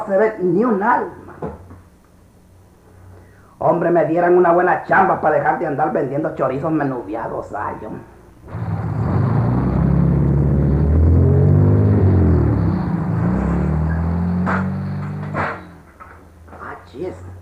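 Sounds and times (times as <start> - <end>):
speech: 0.0 - 1.2, 3.6 - 8.7
Mercedes car engine rumbling, approaching along a lonely alley: 8.4 - 16.5
sharp knocks and clatters of a car settling: 12.2 - 16.7.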